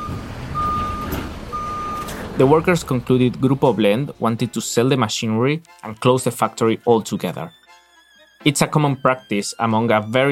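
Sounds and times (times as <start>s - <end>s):
truck reversing beep: 0.0s - 2.2s
large truck engine rumbling: 0.0s - 7.6s
speech: 2.4s - 7.6s, 8.4s - 10.3s.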